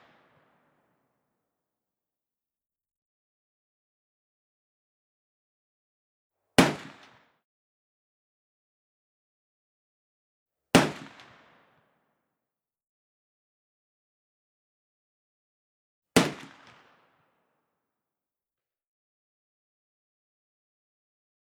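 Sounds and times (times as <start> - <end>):
single musket gunshot: 6.6 - 7.1, 16.2 - 16.8.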